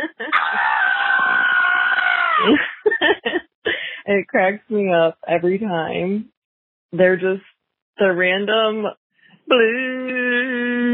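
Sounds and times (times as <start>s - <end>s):
man screaming on a voicemail recording: 0.3s - 2.5s
laughter: 2.4s - 3.4s
speech: 4.1s - 6.3s, 6.9s - 10.2s.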